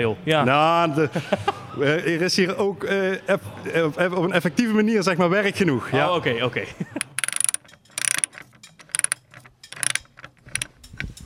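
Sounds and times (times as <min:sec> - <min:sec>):
speech: 0:00.0 - 0:07.0
laughter: 0:01.0 - 0:01.8
ratchet wrench clicking while tightening bolts on a wooden roller coaster: 0:07.0 - 0:11.2.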